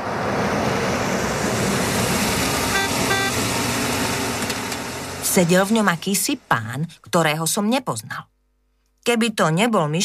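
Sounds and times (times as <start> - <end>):
car arriving to pick up passengers: 0.0 - 7.1
road rumble: 0.0 - 7.1
short high tones: 2.7 - 3.4
speech: 5.4 - 8.3, 9.0 - 10.0.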